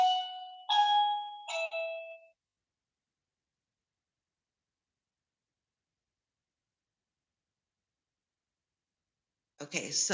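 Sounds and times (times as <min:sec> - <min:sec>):
house doorbell chiming ding-dong: 0:00.0 - 0:02.4
speech: 0:09.6 - 0:10.1.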